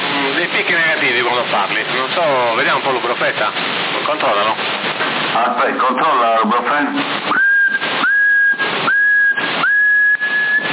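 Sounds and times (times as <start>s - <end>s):
loud radio hiss: 0.0s - 10.7s
speech: 1.0s - 8.0s
person whistling into a CB radio microphone: 7.3s - 10.7s.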